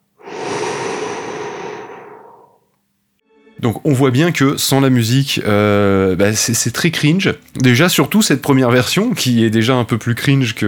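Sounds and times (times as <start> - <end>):
calm breathing in and out while lying down: 0.0 - 2.7
speech: 3.6 - 10.6.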